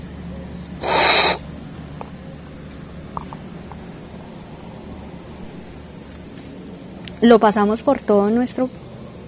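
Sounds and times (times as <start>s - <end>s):
loud slurp of coffee samples: 0.8s - 1.4s
speech: 7.2s - 8.8s.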